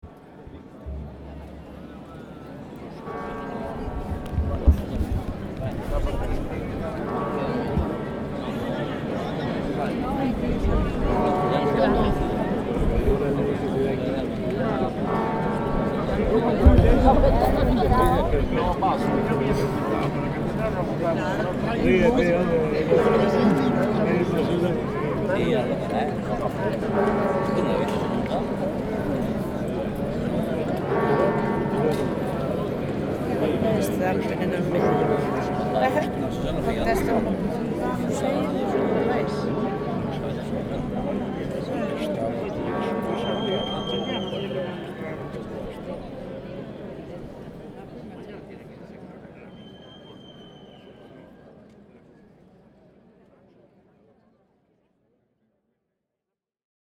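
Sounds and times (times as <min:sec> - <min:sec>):
noon bells ringing in Santiago de Compostela: 0:00.8 - 0:45.8.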